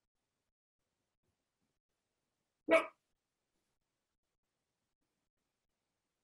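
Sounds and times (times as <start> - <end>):
dog barking sharply: 2.7 - 2.9.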